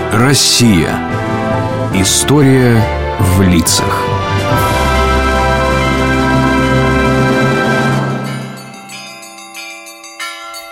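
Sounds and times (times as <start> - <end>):
speech: 0.2 - 1.2, 2.0 - 4.8
church bells ringing festively: 3.4 - 10.7.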